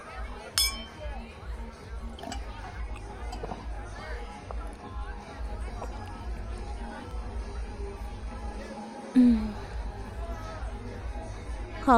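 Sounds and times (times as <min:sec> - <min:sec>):
crowd chatter in a crowded nightclub: 0:00.0 - 0:11.9
glasses clinking in a toast: 0:00.5 - 0:01.2, 0:02.1 - 0:04.1.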